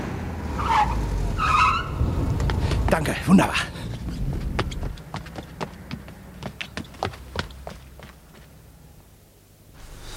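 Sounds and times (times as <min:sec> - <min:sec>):
car tires screeching skidding to a halt on pavement: 0:00.0 - 0:05.0
car engine rumbling: 0:00.0 - 0:08.3
speech: 0:02.9 - 0:03.8.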